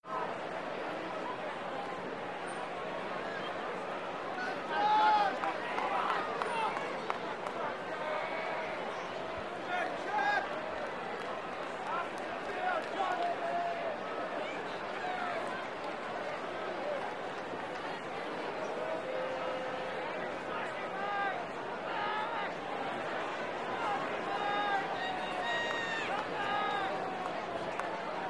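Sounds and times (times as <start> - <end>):
idle crowd in a sports arena: 0.0 - 28.2.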